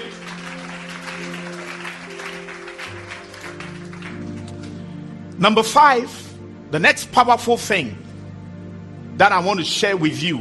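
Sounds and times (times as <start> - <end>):
audience clapping: 0.0 - 4.8
speech: 5.4 - 8.0, 9.2 - 10.3.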